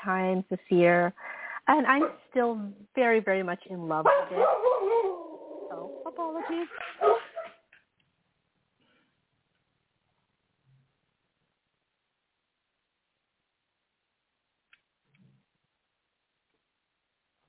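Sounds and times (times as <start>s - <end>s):
speech: 0.0s - 5.1s, 5.7s - 7.2s
dog barking and yipping: 4.1s - 5.4s, 6.4s - 7.7s.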